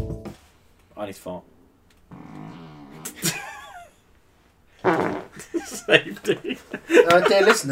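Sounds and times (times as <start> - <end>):
buzzy and squeaky sputtering fart noises: 2.1 - 3.4, 4.7 - 5.5
laughter: 3.2 - 4.1, 5.3 - 7.7
speech: 7.1 - 7.7.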